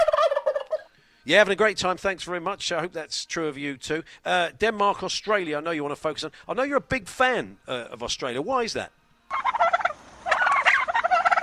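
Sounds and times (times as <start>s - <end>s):
turkey gobbling: 0.0s - 0.9s, 9.3s - 11.4s
speech: 1.3s - 9.0s.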